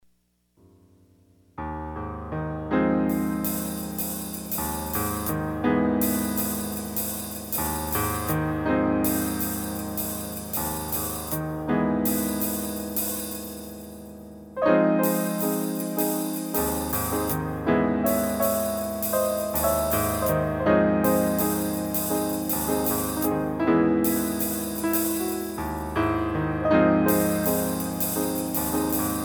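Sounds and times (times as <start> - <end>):
piano: 0.6 - 29.2.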